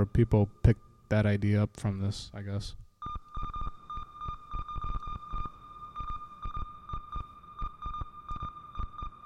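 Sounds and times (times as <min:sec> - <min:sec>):
speech: 0:00.0 - 0:02.8
synthesizer sequencer beeping in a Morse-code-like pattern: 0:03.0 - 0:09.2.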